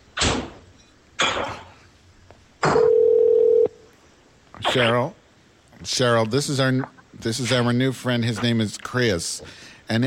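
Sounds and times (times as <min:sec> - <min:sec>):
telephone dial tone while adding a caller to a call: 0:02.8 - 0:03.8
speech: 0:04.7 - 0:05.2, 0:05.8 - 0:10.0.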